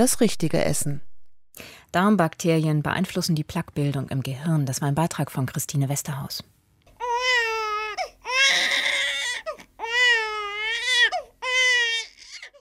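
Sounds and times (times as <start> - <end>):
speech: 0.0 - 6.6
baby crying: 7.0 - 12.5.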